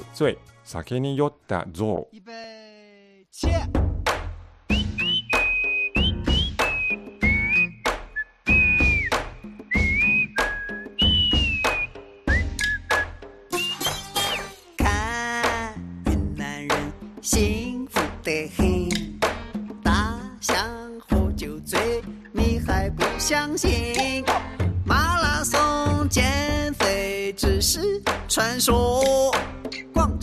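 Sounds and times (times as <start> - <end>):
speech: 0.2 - 2.4, 3.4 - 3.6, 28.4 - 29.3
Chinese pop song with bouncy beat: 3.4 - 30.2
bright clear whistled melody: 4.7 - 14.7.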